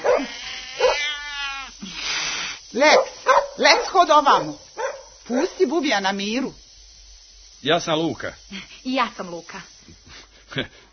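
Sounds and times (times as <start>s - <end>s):
frightened cat meowing: 0.0s - 1.8s
speech: 2.8s - 4.6s, 5.3s - 6.6s, 7.6s - 9.7s, 10.6s - 10.9s.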